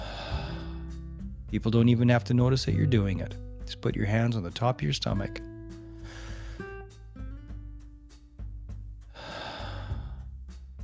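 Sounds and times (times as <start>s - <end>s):
deep diaphragmatic breath drawn in and let out: 0.0s - 1.0s, 5.8s - 6.8s, 9.0s - 10.4s
speech: 1.5s - 5.5s.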